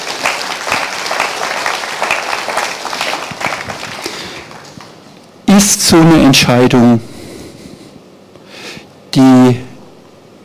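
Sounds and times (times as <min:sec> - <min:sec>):
audience clapping: 0:00.0 - 0:05.3
speech: 0:05.6 - 0:07.1.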